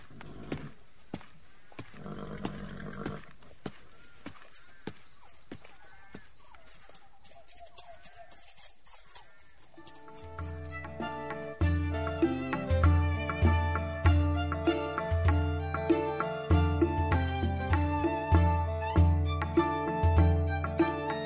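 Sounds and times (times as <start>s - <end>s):
horse hooves striking the ground at a walk: 0.0s - 16.8s
faint birdsong: 0.0s - 21.2s
soft outdoor ambience: 0.0s - 21.2s.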